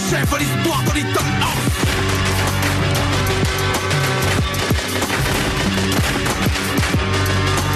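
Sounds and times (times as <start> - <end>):
speech: 0.1 - 1.7
sustained burst of rapid gunfire: 1.5 - 7.7
booming impacts: 1.6 - 7.7.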